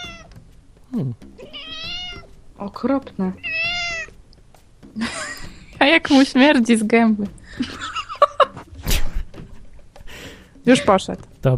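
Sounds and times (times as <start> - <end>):
talkative cat on someone's lap meowing: 0.0 - 0.4, 1.4 - 2.4, 3.3 - 4.2
speech: 0.9 - 1.5, 2.6 - 3.6, 5.0 - 5.2, 5.8 - 7.9, 10.7 - 11.5
laughter: 5.0 - 5.5, 7.5 - 9.7.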